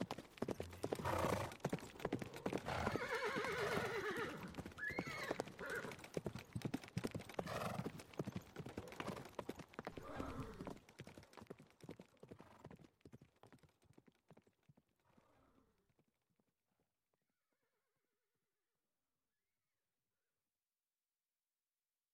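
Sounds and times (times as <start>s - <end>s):
chariot horses trotting: 0.0s - 16.2s
chariot horse neighing: 2.6s - 6.0s, 10.0s - 10.8s.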